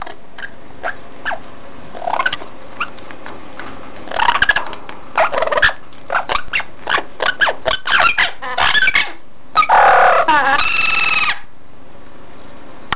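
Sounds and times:
parrot squawks, clicks and whistled notes: 0.0 - 1.4, 2.0 - 2.9, 4.1 - 11.5
low steady hum: 0.0 - 12.9.

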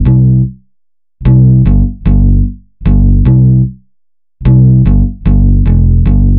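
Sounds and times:
nonchalant reggae bass line: 0.0 - 0.6, 1.2 - 3.8, 4.4 - 6.3.

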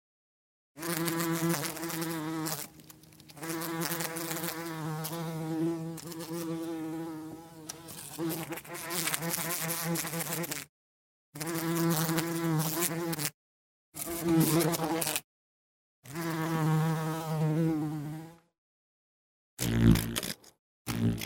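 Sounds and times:
bee buzzing: 0.8 - 10.7, 11.4 - 13.4, 14.0 - 15.2, 16.1 - 18.4, 19.6 - 20.3, 20.9 - 21.2.

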